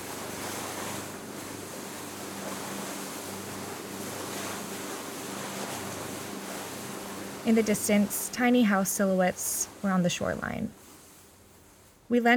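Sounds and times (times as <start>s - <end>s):
breath of wind: 0.0s - 12.2s
water waves along the shoreline of Smith Island: 0.0s - 12.3s
speech: 7.4s - 10.8s, 12.1s - 12.3s.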